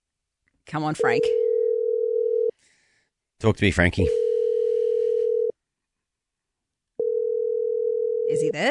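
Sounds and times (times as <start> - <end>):
speech: 0.7 - 1.4, 3.4 - 4.2, 8.5 - 8.7
outgoing phone call ringing tone: 1.1 - 2.5, 4.1 - 5.5, 7.0 - 8.5.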